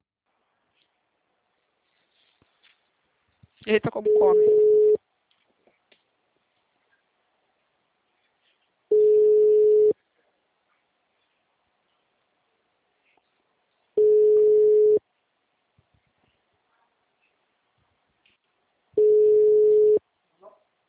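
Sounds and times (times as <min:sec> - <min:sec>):
speech: 0:03.6 - 0:04.8
telephone ringback tones while placing a call: 0:04.1 - 0:05.0, 0:08.9 - 0:10.0, 0:14.0 - 0:15.0, 0:19.0 - 0:20.0.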